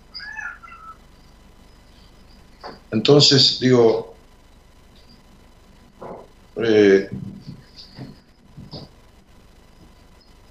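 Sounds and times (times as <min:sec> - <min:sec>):
cat meowing: 0:00.1 - 0:01.0
speech: 0:02.6 - 0:04.1, 0:06.6 - 0:07.3.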